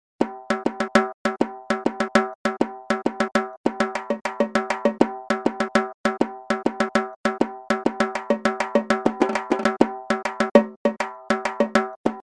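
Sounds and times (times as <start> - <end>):
halgi frame drum: 0.2 - 12.2.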